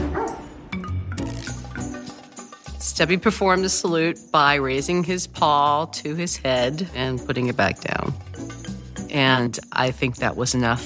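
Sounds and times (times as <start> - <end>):
dog barking: 0.0 - 0.5
speech: 2.9 - 8.5, 9.1 - 10.8.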